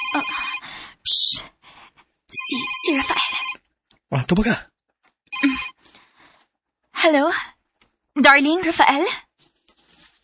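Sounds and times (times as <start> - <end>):
cellphone ringing with a bright electronic ringtone: 0.0 - 0.6, 2.4 - 3.6, 5.3 - 5.8
speech: 2.5 - 3.5, 4.1 - 4.7, 7.0 - 7.5, 8.2 - 9.2.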